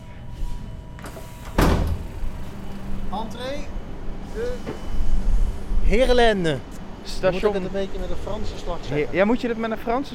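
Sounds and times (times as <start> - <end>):
sliding door opening with a mechanical whoosh: 0.4 - 3.0
speech: 3.1 - 3.8, 4.4 - 5.0, 5.9 - 10.1.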